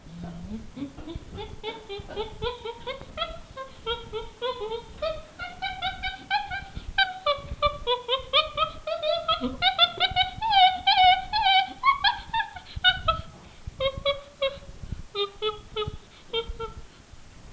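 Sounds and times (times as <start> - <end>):
chimpanzee calls from low feeding grunts to loud screams: 0.0 - 14.6
laughter: 0.0 - 14.6.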